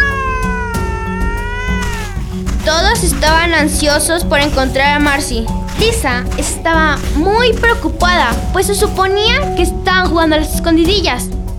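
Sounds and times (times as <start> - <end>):
fluffy cat meowing: 0.0 - 3.6
speech: 2.7 - 11.4.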